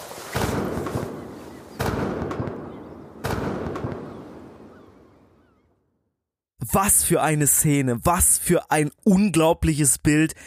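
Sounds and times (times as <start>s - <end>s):
cannon shots: 0.3s - 4.8s
speech: 6.7s - 10.4s.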